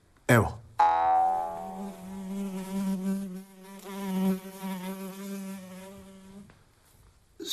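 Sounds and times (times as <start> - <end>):
fly buzzing around a person's face: 0.8 - 6.5.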